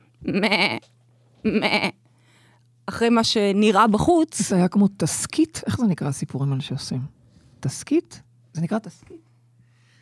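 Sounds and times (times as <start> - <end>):
faint low hum: 0.0 - 10.0
speech: 0.2 - 2.0, 2.9 - 9.3
voice imitating sheep bleating: 0.2 - 2.0.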